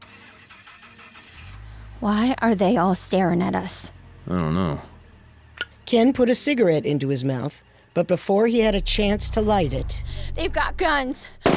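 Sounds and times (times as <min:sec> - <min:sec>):
Silverado pickup truck engine cranking and starting: 0:00.0 - 0:05.5, 0:08.6 - 0:11.5
speech: 0:02.0 - 0:04.9, 0:05.9 - 0:11.5.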